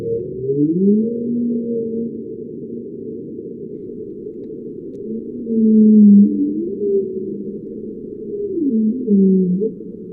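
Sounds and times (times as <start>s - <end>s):
whale calls recorded by underwater acoustic monitoring: 0.0s - 2.3s, 5.1s - 10.1s
steady underwater rumble: 0.0s - 10.1s.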